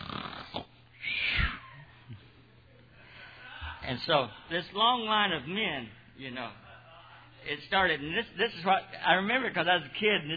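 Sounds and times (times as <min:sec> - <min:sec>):
man's voice imitating a minister snoring: 0:00.0 - 0:00.7
speech: 0:03.9 - 0:06.6, 0:07.4 - 0:10.3.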